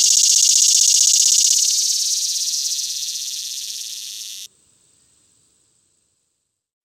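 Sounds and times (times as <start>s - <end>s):
swamp cicada call: 0.0s - 4.5s.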